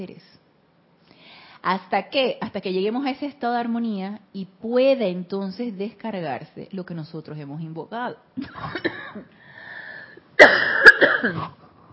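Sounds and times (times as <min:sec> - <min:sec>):
speech: 0:00.0 - 0:00.3, 0:01.6 - 0:09.4, 0:10.4 - 0:11.6
person coughing with a raspy throaty catch: 0:08.4 - 0:09.3, 0:10.4 - 0:11.6.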